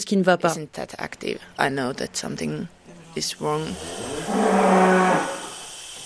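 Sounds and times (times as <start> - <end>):
speech: 0.0 - 5.3
dairy cow mooing in a barn on a dairy farm: 3.7 - 5.6.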